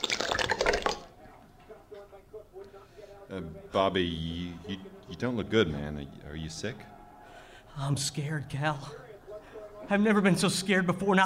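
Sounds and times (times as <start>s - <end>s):
liquor poured as a shot into a small glass in a bar: 0.0s - 1.1s
speech: 3.3s - 6.9s, 7.8s - 9.1s, 9.9s - 11.2s.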